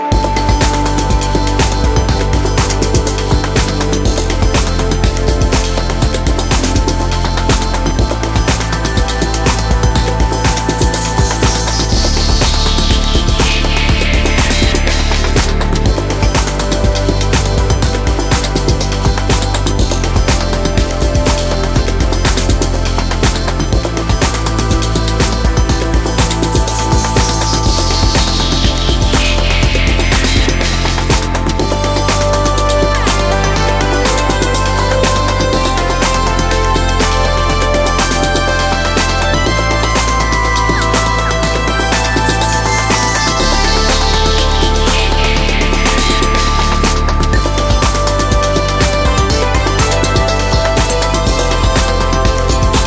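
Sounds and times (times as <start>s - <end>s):
fuzz jazz music: 0.1s - 52.8s.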